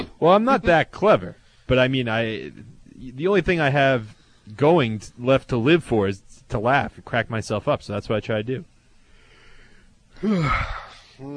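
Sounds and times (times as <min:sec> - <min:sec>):
speech: 0:00.2 - 0:08.7, 0:10.2 - 0:11.3
person yawning: 0:10.2 - 0:11.3.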